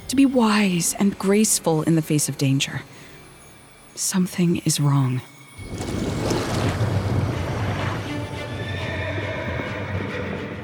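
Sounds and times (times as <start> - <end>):
speech: 0.1 - 3.1, 4.0 - 5.9
knight's horse galloping toward a castle gate: 5.7 - 9.3.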